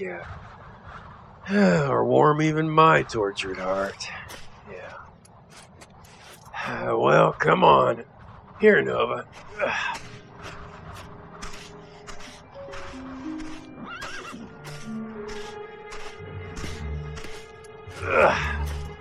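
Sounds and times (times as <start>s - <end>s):
speech: 0.0s - 5.0s, 6.6s - 10.0s, 18.0s - 18.6s
horse hooves clopping on hard ground: 0.0s - 19.0s
horse snorting breath: 10.9s - 19.0s
horse whinnying loudly: 13.8s - 14.5s.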